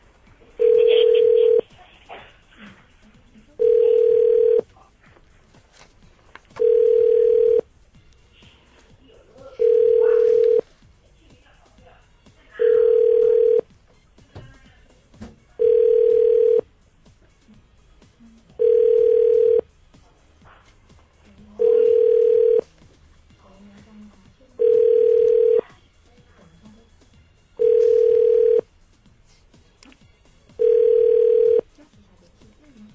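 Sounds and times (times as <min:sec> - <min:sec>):
telephone ringback tone: 0:00.6 - 0:01.6, 0:03.6 - 0:04.6, 0:06.6 - 0:07.7, 0:09.6 - 0:10.6, 0:12.6 - 0:13.6, 0:15.6 - 0:16.6, 0:18.6 - 0:19.6, 0:21.6 - 0:22.6, 0:24.6 - 0:25.6, 0:27.6 - 0:28.7, 0:30.6 - 0:31.6.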